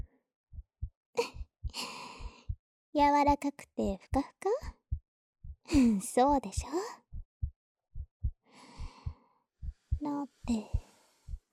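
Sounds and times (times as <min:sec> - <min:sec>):
slow heartbeat heard from inside a person's chest: 0:00.6 - 0:04.8, 0:05.4 - 0:11.5
speech: 0:03.0 - 0:04.8, 0:05.7 - 0:07.0, 0:10.0 - 0:10.8
soft breathy sigh and long exhale: 0:10.4 - 0:11.4.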